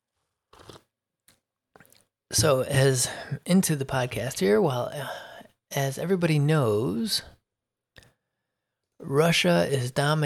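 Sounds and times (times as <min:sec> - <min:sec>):
person slurping coffee: 0:00.5 - 0:00.9
speech: 0:02.3 - 0:07.3, 0:09.1 - 0:10.2.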